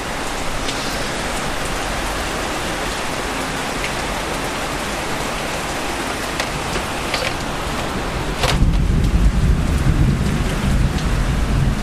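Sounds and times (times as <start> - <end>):
steady dense rainfall: 0.0 - 11.8.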